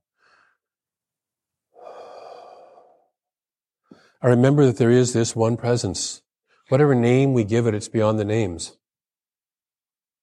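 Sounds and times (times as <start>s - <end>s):
person breathing during a guided prayer: 0.0s - 0.8s, 1.7s - 3.2s, 3.8s - 4.2s
speech: 4.2s - 8.8s.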